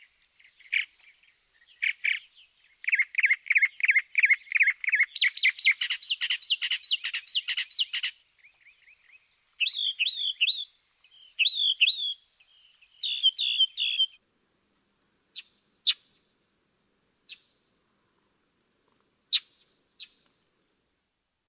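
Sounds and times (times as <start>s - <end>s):
Northern mockingbird singing: 0.0s - 14.3s.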